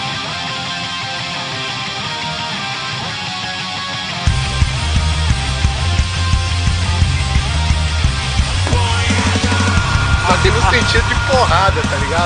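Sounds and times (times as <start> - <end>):
loud dense song by a Spanish-language band: 0.0 - 12.2
heavy bass: 4.3 - 12.2
steady pounding drums: 4.3 - 12.2
singer shouting vocals: 8.6 - 12.2
speech: 10.7 - 12.2.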